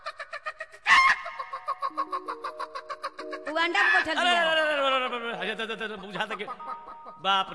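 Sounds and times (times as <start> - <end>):
hens and roosters squawking in a coop: 0.9 - 4.1
speech: 3.7 - 4.6, 5.5 - 7.5.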